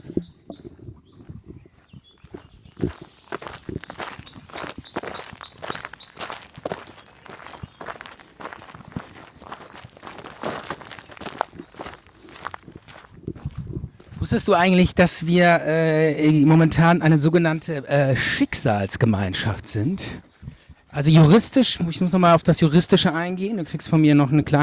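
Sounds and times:
footsteps walking on a wide gravel path: 0.0s - 14.3s
speech: 14.3s - 20.3s, 21.0s - 24.6s.

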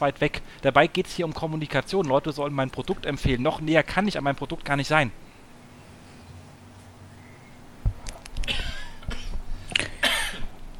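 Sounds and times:
speech: 0.0s - 5.2s
person coughing and clearing throat: 8.4s - 10.5s.

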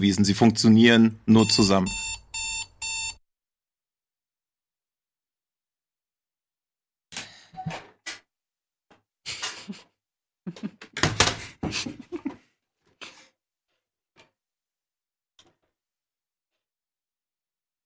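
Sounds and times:
speech: 0.0s - 2.4s
telephone ringback tone: 1.4s - 3.2s
laughter: 9.3s - 9.9s, 10.5s - 10.8s, 11.4s - 12.4s.

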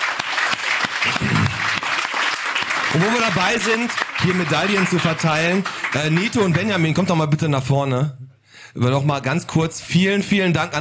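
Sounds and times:
crowd applause at an award ceremony: 0.0s - 7.2s
speech: 3.0s - 10.7s.

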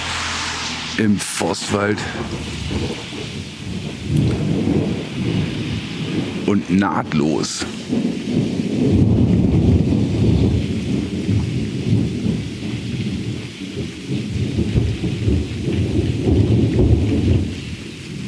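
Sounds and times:
deep thunder rumbling: 0.0s - 18.2s
steady heavy rain in a thunderstorm: 0.0s - 18.2s
speech: 1.0s - 11.7s.

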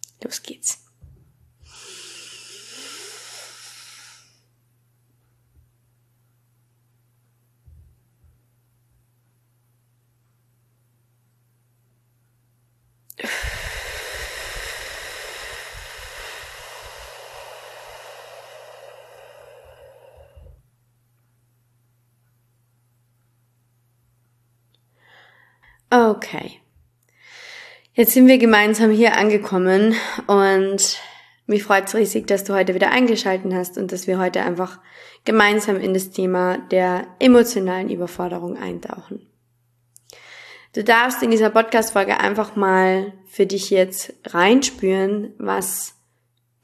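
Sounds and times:
speech: 0.2s - 0.8s, 26.1s - 26.6s, 28.0s - 39.3s, 40.7s - 46.0s
extended airy exhale: 1.6s - 4.4s, 13.2s - 20.6s
slow breath drawn in: 1.6s - 4.5s, 13.2s - 20.6s, 24.9s - 25.8s, 40.1s - 40.7s.

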